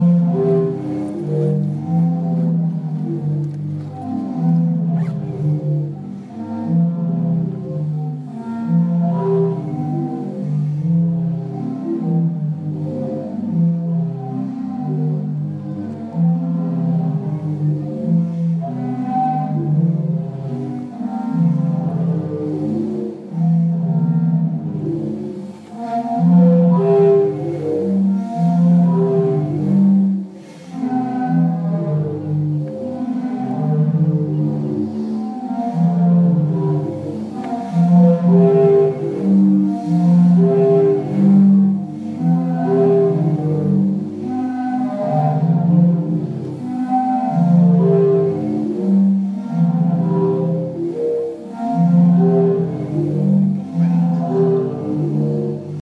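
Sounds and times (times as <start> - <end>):
sea organ in Zadar Croatia: 0.0 - 55.8.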